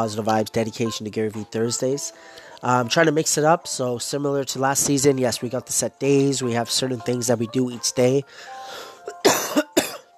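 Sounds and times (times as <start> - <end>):
speech: 0.0 - 9.6
harsh breathy coughing: 9.1 - 10.1.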